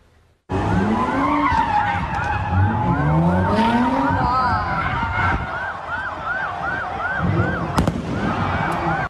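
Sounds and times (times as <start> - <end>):
sirens wailing: 0.5 - 9.0
tires screeching as cars do donuts at a Philadelphia street takeover: 0.5 - 9.0
fireworks popping at a Philadelphia street takeover: 7.8 - 8.4.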